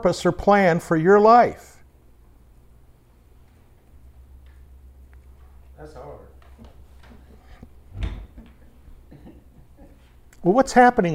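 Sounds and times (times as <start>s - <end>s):
speech: 0.0s - 1.7s, 10.4s - 11.1s
chairs shifting and bumping in a room: 6.4s - 8.6s.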